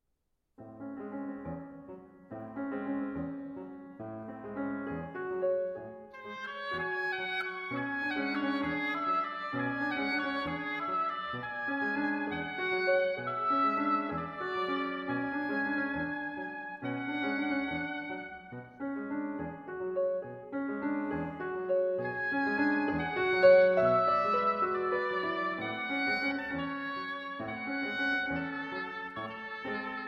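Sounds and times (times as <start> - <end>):
piano: 0.6 - 30.0
oboe playing an impromptu: 4.9 - 30.0.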